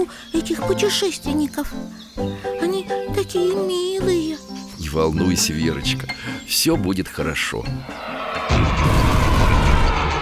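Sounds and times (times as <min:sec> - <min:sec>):
speech: 0:00.0 - 0:08.9
cannon shot launching a projectile at night: 0:08.5 - 0:10.2.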